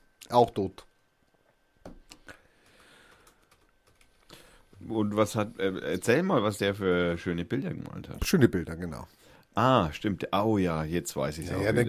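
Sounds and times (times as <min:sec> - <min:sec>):
speech: 0:00.3 - 0:00.9, 0:04.8 - 0:11.8
typing on a computer keyboard: 0:02.6 - 0:04.3.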